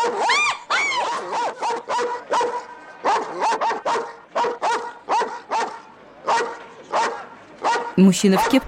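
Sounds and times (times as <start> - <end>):
large German shepherd barking at a train carriage window: 0.0 - 8.6
speech: 8.0 - 8.6.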